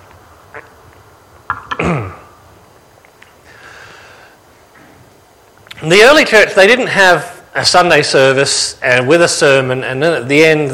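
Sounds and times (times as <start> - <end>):
speech: 0.6 - 0.8, 5.8 - 10.7
lingering cough since COVID: 1.7 - 2.3.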